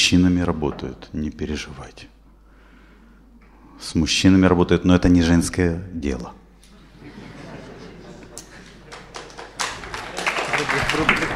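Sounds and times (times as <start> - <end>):
speech: 0.1 - 2.2, 3.8 - 6.4, 10.8 - 11.3
laughter: 6.6 - 11.3
small group of men clapping enthusiastically: 8.3 - 11.3.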